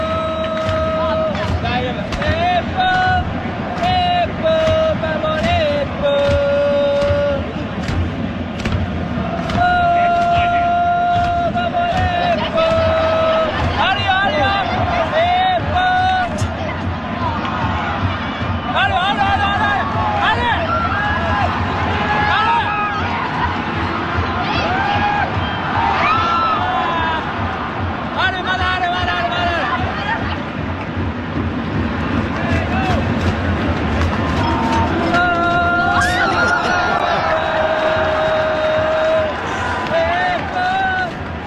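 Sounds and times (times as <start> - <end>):
large soccer match crowd singing a repetitive looping chant: 0.0 - 17.3, 34.3 - 41.4
soccer match crowd cheering: 0.0 - 41.4.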